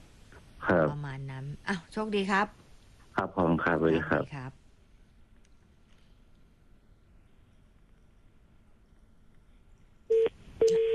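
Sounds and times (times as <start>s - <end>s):
speech: 0.7s - 2.6s, 3.2s - 4.6s
telephone line tone beeps on a phone-in call: 10.1s - 10.9s.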